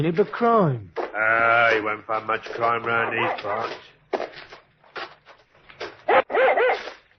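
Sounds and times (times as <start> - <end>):
speech: 0.0 - 3.9
dog barking excitedly: 2.9 - 3.8, 6.0 - 7.0.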